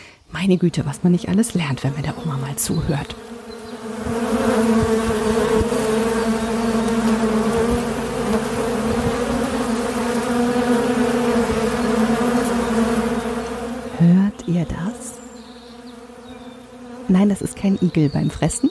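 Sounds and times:
many bees buzzing together: 0.3s - 18.6s
speech: 0.4s - 5.0s, 17.2s - 18.6s.

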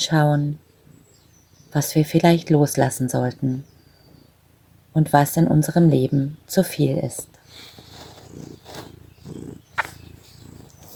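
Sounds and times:
speech: 0.0s - 0.6s, 1.7s - 3.7s, 5.0s - 7.8s
cat purring: 7.5s - 10.9s.

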